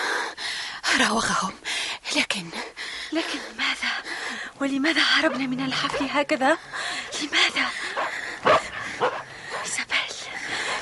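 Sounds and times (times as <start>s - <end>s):
speech: 1.0s - 7.6s
dogs barking: 5.1s - 6.4s, 7.9s - 9.8s.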